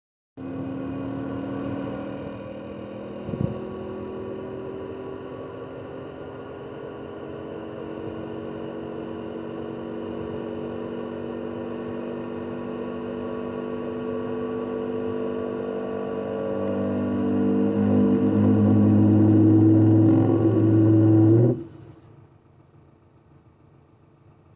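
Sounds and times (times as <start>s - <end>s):
Nugget parking heater failing to start: 13.9s - 22.1s.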